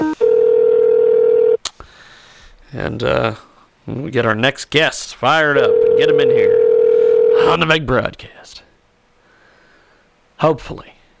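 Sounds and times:
electronic phone tone: 0.0 - 1.6, 5.7 - 7.6
speech: 2.7 - 6.6, 7.4 - 8.7, 10.4 - 11.0.

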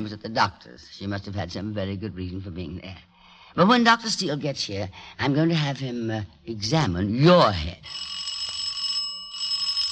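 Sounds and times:
speech: 0.0 - 8.2
electric doorbell buzzing: 7.9 - 9.9.

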